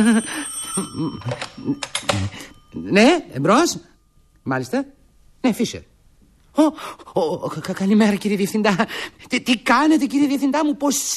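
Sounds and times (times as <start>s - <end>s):
telephone ringing with a bright high bell tone: 0.0s - 3.1s
speech: 0.0s - 5.9s, 6.6s - 11.1s.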